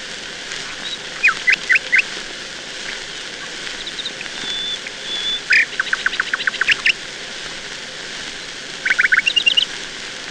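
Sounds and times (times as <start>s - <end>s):
steady background hiss: 0.0s - 10.2s
nightingale singing whistled and chipping notes: 0.7s - 2.1s, 3.4s - 7.0s, 8.8s - 9.7s.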